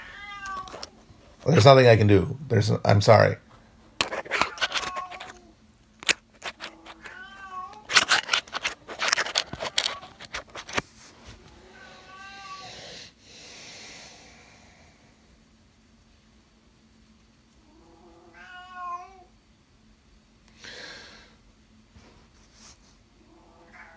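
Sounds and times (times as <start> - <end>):
cat meowing: 0.0 - 0.9, 4.4 - 5.5, 6.6 - 8.7, 11.6 - 12.7, 17.7 - 19.3, 23.3 - 23.9
speech: 1.4 - 3.4
clattering and rustling: 4.0 - 5.4, 6.0 - 11.5.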